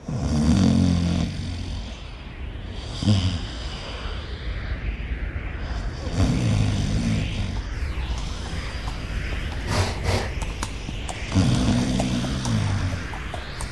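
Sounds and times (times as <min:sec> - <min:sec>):
quiet breathing of a sleeping man: 0:00.0 - 0:13.7
man snoring asleep against a bridge railing: 0:00.1 - 0:01.6.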